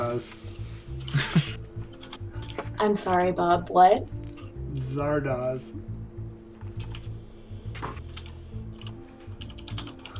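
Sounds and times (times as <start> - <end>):
speech: 0.2 - 1.4, 2.8 - 4.2, 4.8 - 5.9
fast typing on computer keyboards: 1.0 - 2.7, 6.8 - 7.1, 8.0 - 10.1.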